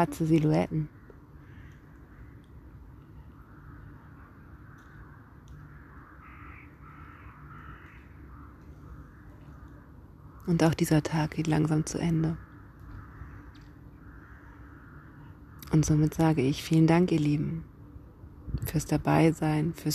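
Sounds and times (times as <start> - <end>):
speech: 0.0 - 1.0, 10.5 - 12.5, 15.7 - 17.7, 18.5 - 19.9
steady low outdoor rumble: 0.0 - 19.9
several crows cawing in flight: 0.7 - 10.8, 11.5 - 15.8.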